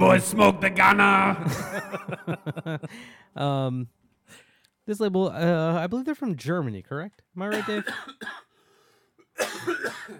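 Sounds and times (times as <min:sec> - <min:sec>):
speech: 0:00.0 - 0:04.0, 0:04.9 - 0:08.5, 0:09.4 - 0:10.1
laughter: 0:01.3 - 0:03.1
harsh rasping cough: 0:07.5 - 0:08.6, 0:09.2 - 0:10.1.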